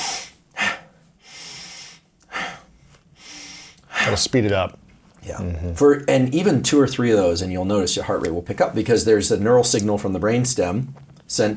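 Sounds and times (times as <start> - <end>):
person doing breathing exercise with deeper inhales and shorter exhales: 0.0 - 4.2
speech: 4.1 - 11.5.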